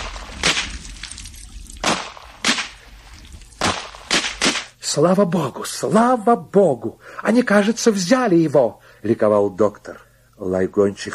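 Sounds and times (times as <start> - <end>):
sharp gunshots in a volley: 0.0 - 0.9, 1.8 - 2.8, 3.6 - 4.8
speech: 4.9 - 11.1.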